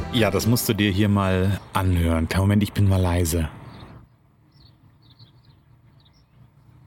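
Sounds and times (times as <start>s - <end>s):
speech: 0.2s - 3.6s
faint bird chirps outdoors: 3.5s - 6.8s.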